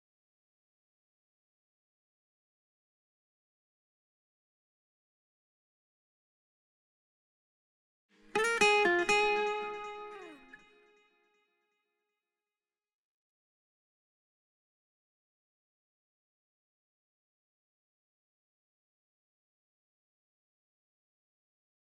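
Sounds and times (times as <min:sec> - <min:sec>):
solo guitar: 0:08.2 - 0:11.2.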